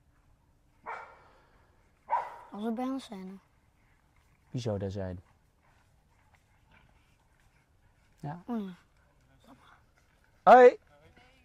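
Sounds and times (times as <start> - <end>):
dog barking: 0.8 - 1.2, 2.1 - 2.6
speech: 2.6 - 3.5, 4.5 - 5.3, 8.2 - 8.9, 10.4 - 10.8.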